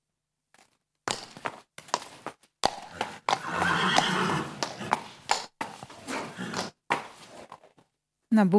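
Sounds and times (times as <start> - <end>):
faint horse hoof shuffles: 0.6 - 7.9
horse snorting: 2.7 - 7.7
stallion neighing in a stable: 2.9 - 5.1, 6.0 - 6.8.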